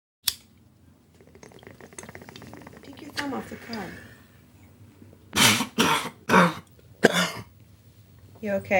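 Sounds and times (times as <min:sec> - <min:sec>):
speech: 0:03.2 - 0:04.1, 0:08.4 - 0:08.7
person coughing after smoking: 0:05.4 - 0:07.5.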